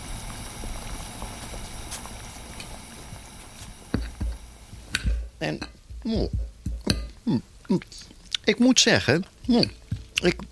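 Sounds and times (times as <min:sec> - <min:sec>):
potatoes boiling in lightly salted water in a small pan: 0:00.0 - 0:10.5
speech: 0:05.4 - 0:06.4, 0:07.3 - 0:10.5.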